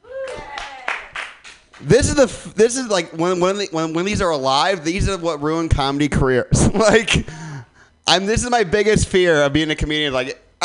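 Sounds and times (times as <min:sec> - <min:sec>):
audience clapping: 0:00.2 - 0:01.9
speech: 0:01.8 - 0:07.4, 0:08.0 - 0:10.6.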